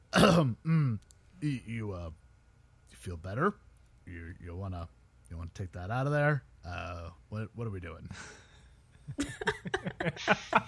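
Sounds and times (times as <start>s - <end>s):
person imitating a polite cough: 0.1s - 1.0s
speech: 0.2s - 2.2s, 2.9s - 8.4s, 9.1s - 10.6s
laughter: 9.1s - 10.6s.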